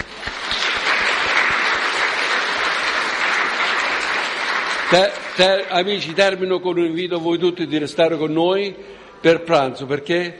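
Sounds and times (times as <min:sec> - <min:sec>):
crowd applauding at a festival held in devotion to the Madonna: 0:00.0 - 0:06.8
speech: 0:04.9 - 0:10.3.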